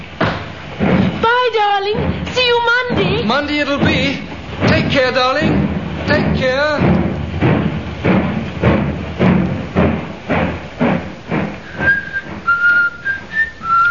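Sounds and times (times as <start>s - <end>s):
heavy footsteps of a man walking up a train platform: 0.0s - 13.8s
speech: 1.5s - 2.7s, 3.3s - 7.0s
man whistling a cheerful tune: 11.6s - 13.8s.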